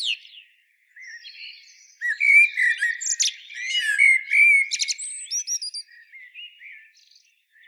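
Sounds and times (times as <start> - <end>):
common blackbird Turdus merula song with fluted whistles and twitters: 2.0 - 6.0.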